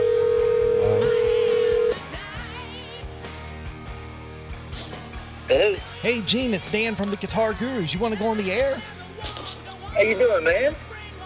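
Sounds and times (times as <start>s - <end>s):
telephone ringback tone on an outgoing call: 0.0s - 2.0s
speech: 6.0s - 9.0s, 10.0s - 10.8s.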